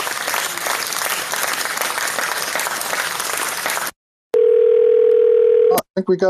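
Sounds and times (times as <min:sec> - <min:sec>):
crowd applause and clapping: 0:00.0 - 0:04.0
steady loud telephone dial tone: 0:04.4 - 0:05.8.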